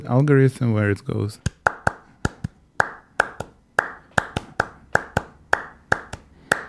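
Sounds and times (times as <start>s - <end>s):
speech: 0.0s - 1.5s
two overlapping phase-shifted hand clap patterns: 1.4s - 6.6s.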